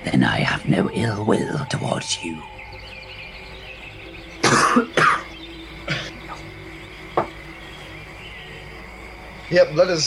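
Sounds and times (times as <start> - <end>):
speech: 0.1 - 2.6, 4.7 - 5.0, 9.5 - 10.0
person clearing throat: 4.4 - 5.3, 5.9 - 6.3
person coughing harshly: 4.4 - 5.3, 5.9 - 6.3.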